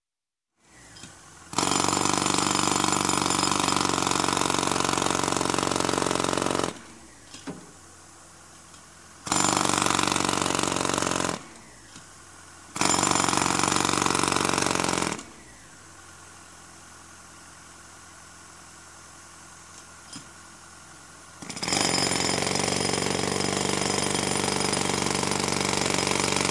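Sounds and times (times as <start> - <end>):
jackhammer hammering at construction: 1.5 - 6.8, 9.2 - 11.6, 12.8 - 15.3, 21.4 - 26.4.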